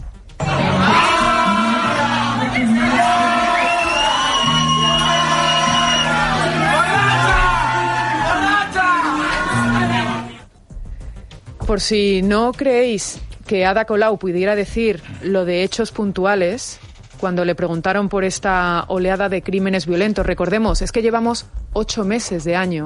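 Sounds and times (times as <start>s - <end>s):
rowdy group of drunken friends shouting and whooping jokingly in a drinks bar: 0.4s - 10.4s
speech: 11.8s - 22.8s.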